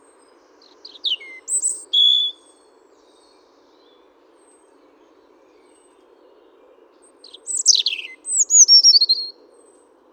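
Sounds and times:
European robin Erithacus rubecula singing: 0.6 - 2.6, 7.2 - 9.4.

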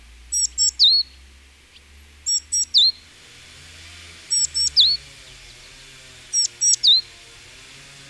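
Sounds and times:
Great tit calling in short bright triplets: 0.3 - 3.3, 4.2 - 7.5.

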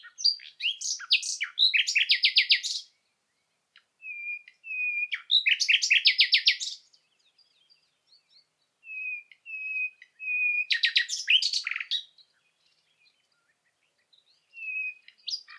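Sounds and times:
common nightingale Luscinia megarhynchos singing: 0.0 - 15.5.

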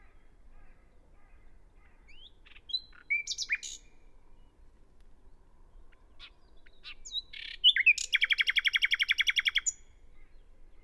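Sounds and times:
common nightingale Luscinia megarhynchos singing: 2.1 - 4.0, 6.2 - 10.0.

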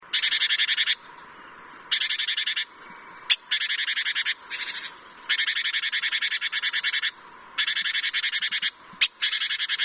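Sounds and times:
Parus major giving harsh buzzy rattling calls: 0.1 - 9.8.

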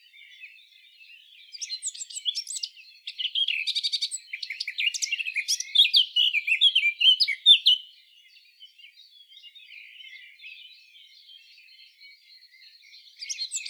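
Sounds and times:
Eurasian blackcap Sylvia atricapilla warbling song: 1.5 - 7.8, 13.0 - 13.6.

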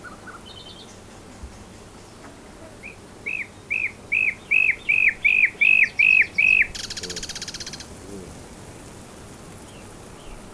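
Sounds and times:
common nightingale Luscinia megarhynchos singing: 4.1 - 9.0.

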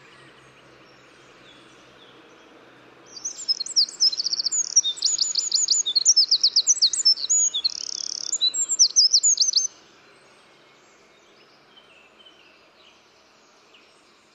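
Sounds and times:
soft background noise: 0.0 - 14.3
Eurasian wren Troglodytes troglodytes singing: 3.1 - 9.7.

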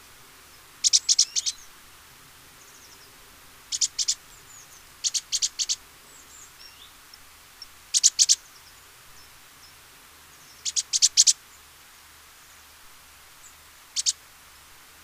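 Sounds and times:
great tit Parus major song: 0.8 - 1.7, 3.7 - 9.8, 13.9 - 14.2.

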